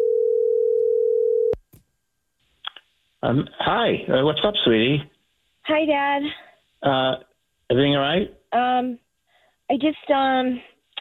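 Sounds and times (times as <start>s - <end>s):
telephone dial tone while placing a call: 0.0s - 1.6s
speech: 3.2s - 9.0s, 9.7s - 10.7s.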